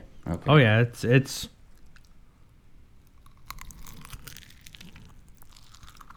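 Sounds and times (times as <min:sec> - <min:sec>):
speech: 0:00.2 - 0:01.6
person chewing a crunchy orange slice soaked in a cocktail: 0:01.6 - 0:06.1.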